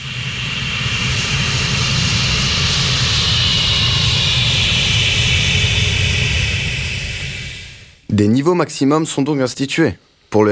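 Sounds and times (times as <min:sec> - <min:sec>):
jet aircraft engine roaring: 0:00.0 - 0:08.1
speech: 0:08.2 - 0:10.5.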